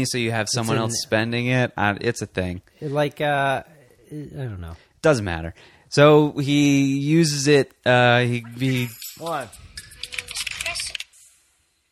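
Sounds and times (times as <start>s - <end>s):
speech: 0.0s - 9.6s
fast typing on a computer keyboard: 9.8s - 11.1s.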